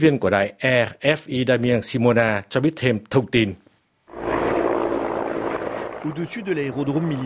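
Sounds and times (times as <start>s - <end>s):
speech: 0.0s - 3.6s, 6.0s - 7.2s
helicopters flying low overhead: 4.1s - 7.2s.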